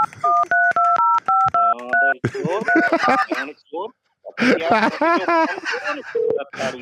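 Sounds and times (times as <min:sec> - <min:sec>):
electronic keypad beeps of a telephone number being dialed: 0:00.0 - 0:03.3, 0:06.2 - 0:06.4
person speaking: 0:00.0 - 0:06.8
laughter: 0:02.2 - 0:03.5, 0:04.4 - 0:06.8.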